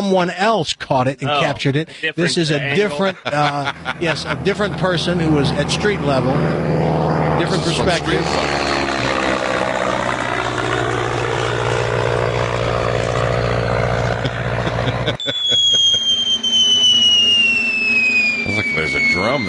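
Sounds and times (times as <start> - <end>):
speech: 0.0 - 8.8
laughter: 1.4 - 5.8, 14.0 - 15.8
propeller aircraft roaring overhead: 2.3 - 19.4
high thin whistling tone: 15.2 - 19.4.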